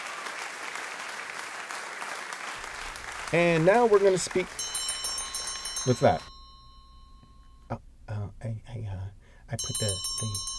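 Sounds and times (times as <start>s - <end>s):
small bell hung on a janitor's closet ringing: 2.7s - 7.8s, 9.5s - 10.5s
speech: 3.3s - 4.7s, 5.8s - 6.3s, 9.5s - 10.5s.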